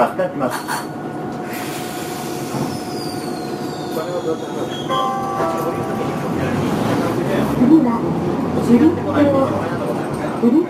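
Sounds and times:
tram rumbling on rails: 0:00.1 - 0:10.6
high metallic squeal: 0:02.8 - 0:05.2.

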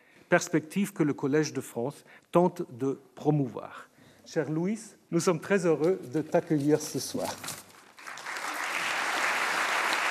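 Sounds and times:
speech: 0:00.3 - 0:07.6
applause from an audience of college professors at an inaugural lecture: 0:07.7 - 0:10.1.

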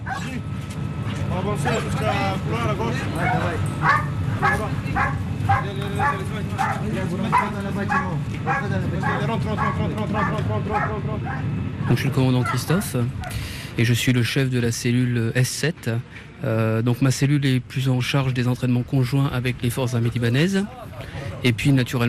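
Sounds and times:
military intervention dogs barking during training: 0:00.0 - 0:00.4, 0:03.0 - 0:13.5
rumbling noise: 0:00.0 - 0:22.0
voices: 0:00.0 - 0:22.0
speech: 0:01.4 - 0:22.0.

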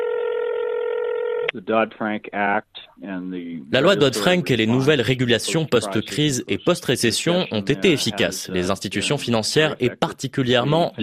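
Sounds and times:
steady electronic telephone dialing tone: 0:00.0 - 0:01.5
speech: 0:01.5 - 0:11.0.

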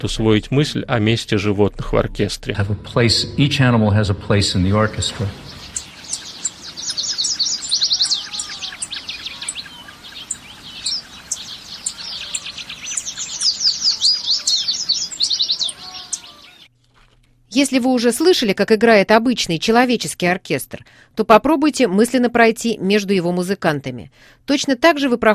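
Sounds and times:
speech: 0:00.0 - 0:05.6, 0:17.6 - 0:25.3
birds singing in a chorus of chirps, trills and tweets: 0:04.5 - 0:16.7.

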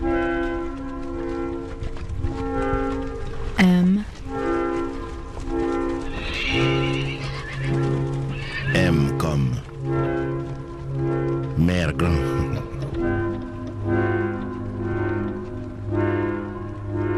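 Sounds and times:
droning tonal background: 0:00.0 - 0:17.1
horse neighing: 0:06.1 - 0:09.2.

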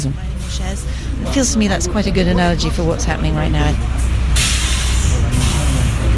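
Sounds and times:
speech: 0:00.0 - 0:04.1
tour bus engine idling: 0:00.0 - 0:06.1
bus air brake hiss: 0:04.4 - 0:06.1.

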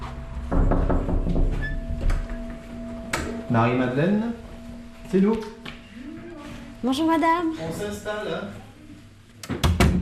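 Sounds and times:
low hum: 0:00.0 - 0:07.6
knocking on a door: 0:00.5 - 0:01.7, 0:09.5 - 0:10.0
door opening with a rattle and clunk: 0:00.5 - 0:02.6
speech: 0:03.5 - 0:04.4, 0:05.1 - 0:05.6, 0:06.8 - 0:08.6.

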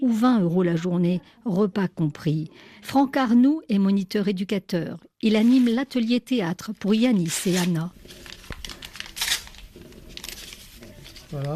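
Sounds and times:
speech: 0:00.0 - 0:08.4, 0:11.3 - 0:11.5
paper bag torn apart while theatre scenery is prepared: 0:05.3 - 0:06.0, 0:07.2 - 0:11.5.

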